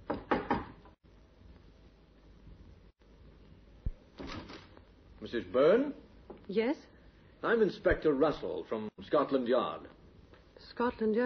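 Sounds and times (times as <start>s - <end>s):
sharp loud knocks on a wooden door of a small flat: 0.0s - 0.8s
speech: 5.2s - 10.0s, 10.6s - 11.2s.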